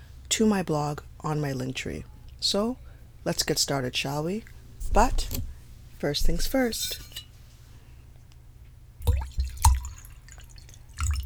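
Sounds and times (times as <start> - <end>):
speech: 0.4 - 7.2
red wine being poured: 9.0 - 11.2.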